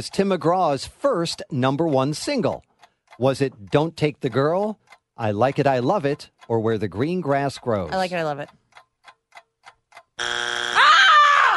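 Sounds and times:
speech: 0:00.0 - 0:08.6
loud harsh electronic quiz show wrong-answer buzzer: 0:10.2 - 0:10.8.

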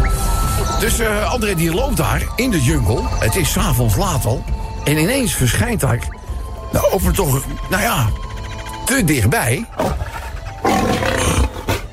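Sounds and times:
speech: 0:00.8 - 0:08.2, 0:08.9 - 0:10.2
lion roaring: 0:09.8 - 0:11.9.

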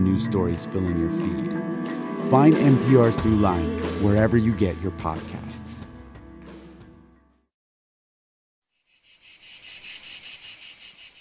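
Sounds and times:
speech: 0:00.0 - 0:05.9
short burst of tonal music: 0:00.0 - 0:07.2
cicadas buzzing: 0:08.7 - 0:11.1.

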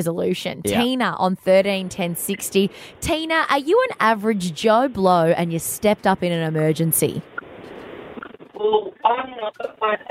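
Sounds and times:
speech: 0:00.0 - 0:07.4, 0:08.6 - 0:10.0
caller's robotic garbled voice over a tinny phone line: 0:00.6 - 0:01.2, 0:08.6 - 0:10.0.

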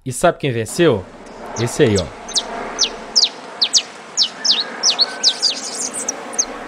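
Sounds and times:
speech: 0:00.0 - 0:02.2
hiss: 0:00.0 - 0:06.6
saffron finch singing: 0:01.6 - 0:06.6.

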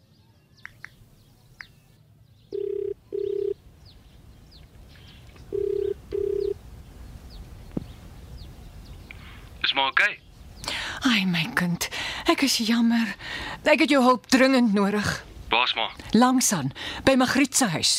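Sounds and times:
birds chirping: 0:00.0 - 0:14.1
telephone ringback tone while calling someone: 0:02.5 - 0:03.6, 0:05.5 - 0:06.6
speech: 0:09.8 - 0:10.2, 0:11.0 - 0:17.9.

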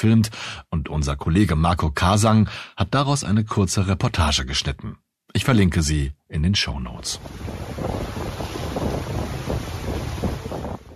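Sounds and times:
speech: 0:00.0 - 0:07.9
boat engine droning on Lake Salvador: 0:07.2 - 0:10.9
gusty wind buffeting the microphone: 0:07.2 - 0:10.9
water splashing along the boat hull: 0:07.2 - 0:10.9.

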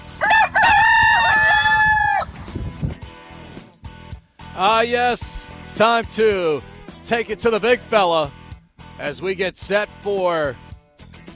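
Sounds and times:
rooster crowing: 0:00.1 - 0:02.4
speech: 0:04.6 - 0:08.4, 0:09.0 - 0:10.6.

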